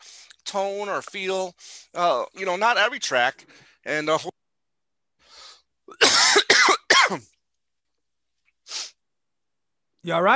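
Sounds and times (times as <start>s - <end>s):
speech: 0.5s - 4.3s, 10.0s - 10.3s
person coughing: 5.9s - 7.3s.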